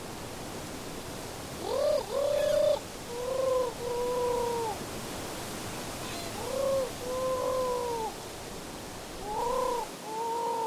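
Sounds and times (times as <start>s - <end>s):
voice imitating a turtle dove cooing at the Roche Percée: 1.6s - 4.8s, 6.1s - 8.1s, 9.2s - 10.6s.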